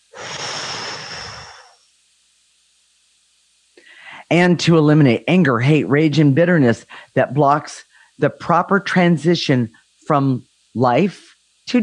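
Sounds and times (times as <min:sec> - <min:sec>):
deep breath blown out in one long breathy exhale: 0:00.0 - 0:01.9, 0:03.8 - 0:04.3
speech: 0:04.3 - 0:11.8.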